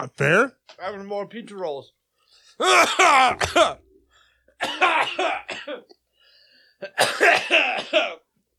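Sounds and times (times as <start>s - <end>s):
speech: 0.0s - 3.9s, 4.6s - 6.0s, 6.8s - 8.2s
person coughing while eating: 2.6s - 3.9s, 4.6s - 6.0s, 6.8s - 8.3s.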